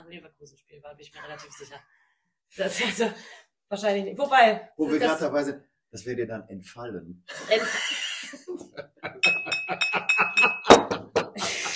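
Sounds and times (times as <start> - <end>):
speech: 0.1 - 10.7
laughter: 7.3 - 11.7
cup falling and clattering: 9.2 - 11.1.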